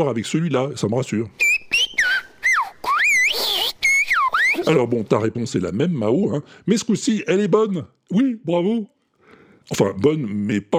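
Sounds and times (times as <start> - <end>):
speech: 0.0 - 1.7, 4.7 - 9.0, 9.7 - 10.7
shepherd's whistled language: 1.4 - 4.6.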